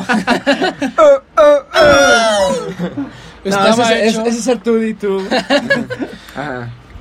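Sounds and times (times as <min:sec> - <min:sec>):
laughter: 0:00.0 - 0:03.6, 0:05.1 - 0:06.7
speech: 0:00.1 - 0:01.6, 0:03.4 - 0:06.8
person imitating a tyrannosaurus roar: 0:01.4 - 0:02.7.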